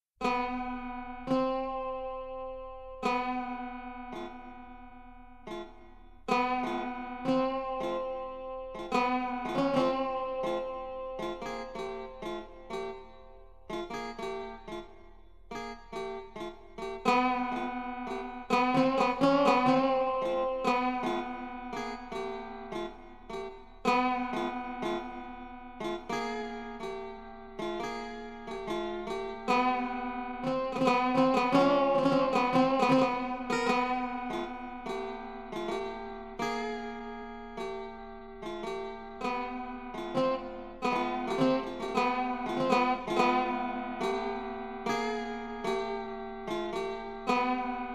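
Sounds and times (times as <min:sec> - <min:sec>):
koto: 0:00.2 - 0:47.9.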